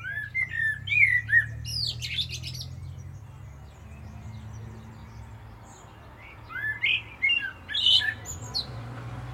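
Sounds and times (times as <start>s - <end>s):
common blackbird Turdus merula song of fluted whistles and twitter: 0.0s - 3.0s, 6.4s - 8.7s.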